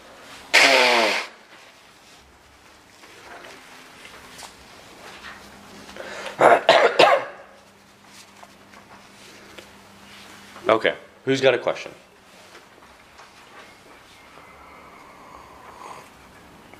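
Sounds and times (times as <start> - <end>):
person blowing their nose with a honking burst: 0.5 - 1.4
short sharp snorting blasts: 0.5 - 1.4
quiet shuffling: 1.5 - 6.2, 7.5 - 10.9, 12.2 - 14.8
speech: 10.7 - 12.1.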